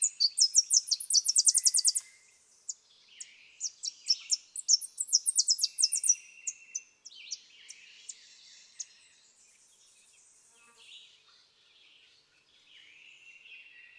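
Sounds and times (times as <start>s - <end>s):
Tennessee warbler song: 0.0s - 13.9s.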